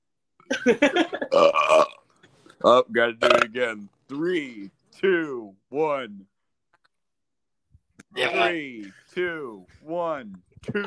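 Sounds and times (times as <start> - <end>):
speech: 0.6 - 1.6, 2.6 - 6.3, 8.2 - 10.8
loud burp: 1.3 - 3.6.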